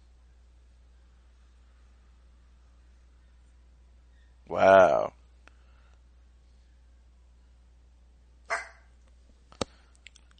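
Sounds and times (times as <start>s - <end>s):
speech: 4.5s - 5.1s
pet dog barking: 8.5s - 8.9s.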